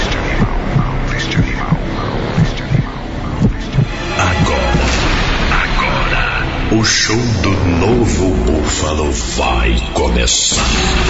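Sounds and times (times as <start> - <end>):
pounding heartbeat sound effect: 0.0 - 5.0
droning hum: 0.0 - 11.0
speech: 6.8 - 11.0.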